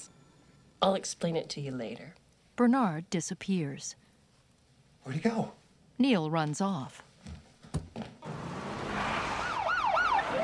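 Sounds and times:
speech: 0:00.8 - 0:04.0, 0:05.0 - 0:07.4
police car sirens wailing as police cars surround a house: 0:08.4 - 0:10.4.

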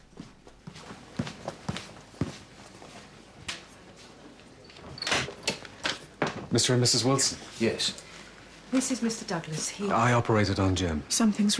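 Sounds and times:
footsteps on a hard floor: 0:00.0 - 0:04.2
speech: 0:06.6 - 0:08.1, 0:08.7 - 0:11.5.

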